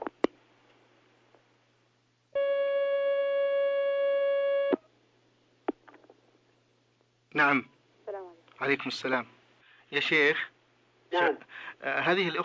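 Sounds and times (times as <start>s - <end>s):
telephone line tone as an incoming call connects: 2.4s - 4.8s
speech: 7.4s - 7.8s, 8.6s - 12.4s.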